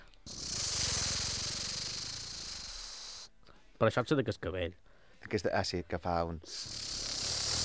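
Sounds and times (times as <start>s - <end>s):
voice imitating a snake's hiss and rattle: 0.0s - 3.3s, 6.4s - 7.6s
speech: 3.8s - 6.9s.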